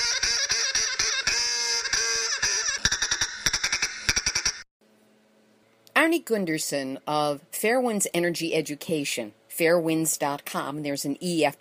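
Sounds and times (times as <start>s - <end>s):
duck quacking loudly and nasally: 0.0s - 4.6s
speech: 6.1s - 11.5s.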